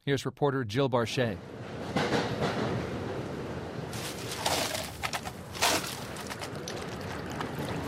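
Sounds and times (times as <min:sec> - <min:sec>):
speech: 0:00.1 - 0:01.6
commuter train bar car rumbling between New York City and Stamford, Connecticut: 0:01.4 - 0:07.8.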